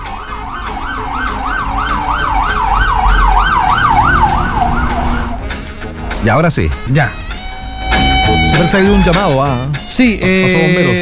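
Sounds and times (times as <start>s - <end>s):
ambulance siren wailing: 0.0s - 6.2s, 7.2s - 9.7s
low rumble of traffic: 0.0s - 11.0s
speech: 6.2s - 7.2s, 8.5s - 11.0s.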